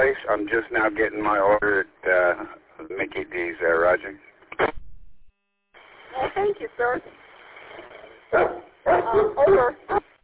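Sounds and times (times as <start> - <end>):
speech: 0.5 - 4.3, 6.4 - 7.2, 8.3 - 10.0
big dogs barking over a radio: 8.3 - 10.0.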